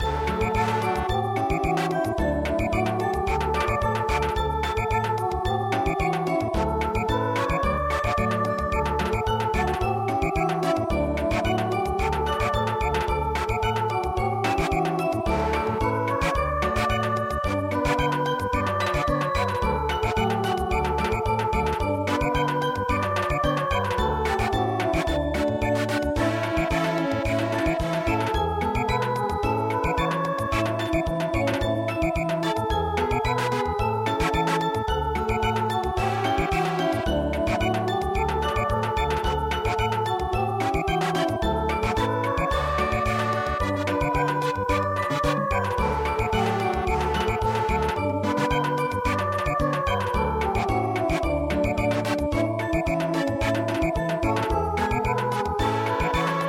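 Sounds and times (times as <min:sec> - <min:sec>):
cheerful harvest samba music: 0:00.0 - 0:56.4.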